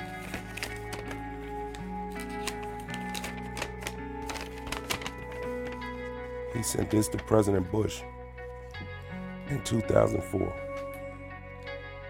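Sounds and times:
man unfolding a sheet of paper with crisp crackling rustles: 0.0 - 7.8
speech: 6.6 - 8.2, 9.5 - 10.6.

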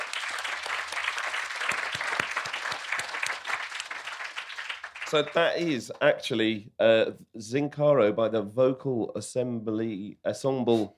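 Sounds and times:
audience applause: 0.0 - 5.7
speech: 5.1 - 10.9.

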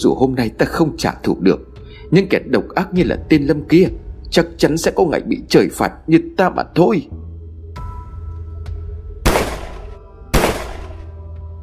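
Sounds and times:
speech: 0.0 - 7.2
loud sharp gunshots: 9.3 - 11.1.

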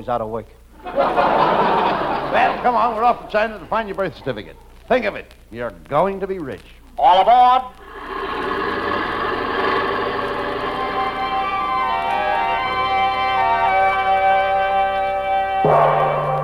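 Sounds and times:
speech: 0.0 - 7.8
laughter: 0.8 - 4.8, 7.9 - 11.8
bells ringing: 10.6 - 16.4.

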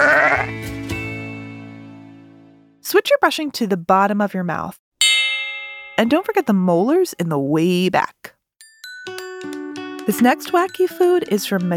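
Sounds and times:
sheep bleating: 0.0 - 0.6
speech: 2.9 - 4.8, 6.0 - 8.4, 10.1 - 11.7.

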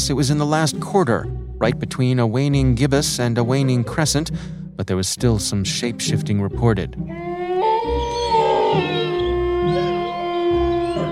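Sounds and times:
speech: 0.0 - 7.3
several wolves howling together: 3.4 - 4.1, 7.1 - 11.1.

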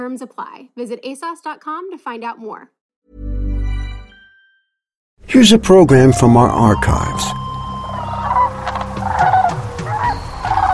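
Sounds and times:
speech: 0.0 - 3.2, 5.3 - 7.4
sandhill cranes calling at the horseshoe bend of the Platte River in central Nebraska: 6.3 - 10.7.

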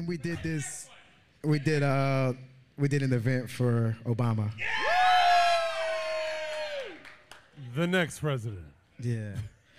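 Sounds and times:
speech: 0.0 - 4.9, 7.6 - 9.5
high sustained whoop: 4.6 - 7.1
crowd cheering: 4.6 - 7.5.

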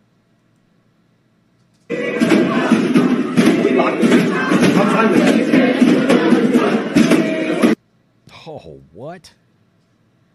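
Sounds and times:
protesters banging on doors: 1.9 - 7.8
protesters clamoring: 1.9 - 7.8
speech: 9.1 - 9.5.

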